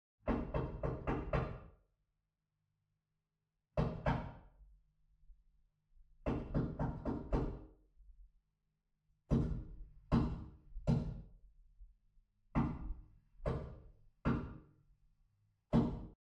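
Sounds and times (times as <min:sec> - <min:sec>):
knocking on an interior glass front door: 0:00.2 - 0:01.7, 0:03.8 - 0:04.4, 0:06.2 - 0:07.7, 0:09.3 - 0:11.2, 0:12.6 - 0:14.6, 0:15.7 - 0:16.2.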